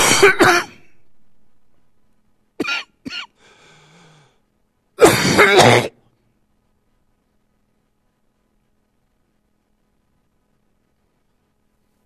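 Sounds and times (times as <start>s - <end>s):
harsh coughing: 0.0s - 0.9s, 2.6s - 3.4s, 5.0s - 6.0s
faint rasping breath: 3.4s - 4.4s.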